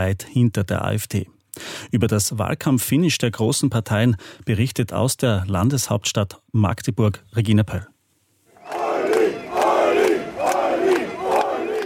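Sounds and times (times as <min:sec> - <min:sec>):
speech: 0:00.0 - 0:07.9
large crowd of supporters chanting and cheering at political rally: 0:08.5 - 0:11.8.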